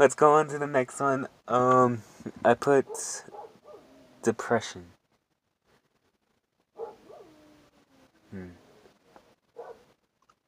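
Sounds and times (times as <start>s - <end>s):
speech: 0.0s - 3.3s, 4.2s - 5.0s, 8.3s - 8.6s
dog barking: 2.9s - 3.9s, 6.8s - 7.4s, 9.5s - 10.0s
dog whining: 3.3s - 4.2s, 6.8s - 8.9s, 9.6s - 9.9s.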